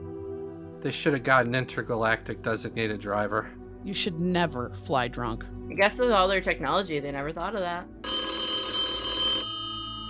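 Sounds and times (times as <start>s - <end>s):
speech: 0.8s - 8.0s
telephone ringing: 8.0s - 10.0s.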